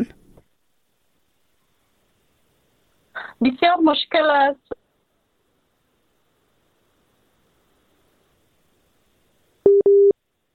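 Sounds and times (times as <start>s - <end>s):
speech: 3.4s - 4.8s
busy tone beeps after a dropped phone call: 9.7s - 10.1s.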